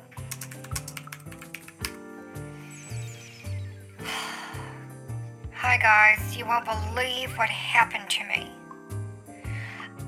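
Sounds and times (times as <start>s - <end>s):
typing on a computer keyboard: 0.2s - 2.0s
speech: 5.8s - 8.6s.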